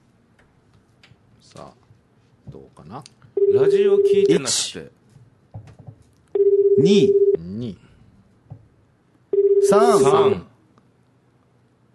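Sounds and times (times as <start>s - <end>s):
speech: 1.5s - 1.8s, 2.5s - 5.0s, 6.8s - 7.8s, 9.7s - 10.5s
long steady electronic telephone tones from a call being placed: 3.4s - 4.3s, 6.4s - 7.4s, 9.3s - 10.2s.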